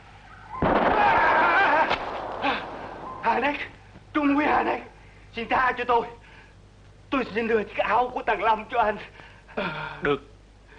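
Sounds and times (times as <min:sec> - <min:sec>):
gunshot: 0:00.6 - 0:03.1
sharp crack: 0:00.6 - 0:03.1
speech: 0:03.4 - 0:03.7, 0:05.4 - 0:06.2, 0:07.1 - 0:10.3.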